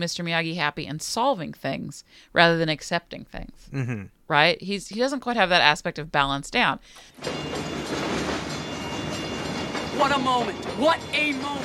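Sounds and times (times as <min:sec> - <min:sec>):
speech: 0:00.0 - 0:08.0, 0:10.0 - 0:11.6
train rumbling along railroad tracks: 0:07.2 - 0:11.6
train wheels clattering: 0:07.2 - 0:11.6.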